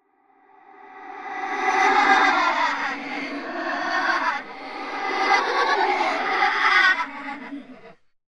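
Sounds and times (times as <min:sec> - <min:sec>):
children laughing reversed with delay: 0:01.2 - 0:08.0.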